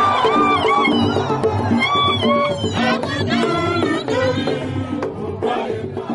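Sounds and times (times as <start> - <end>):
wrestling match crowd roaring and cheering: 0.0 - 4.6
crowd shouting and chanting: 0.0 - 6.1.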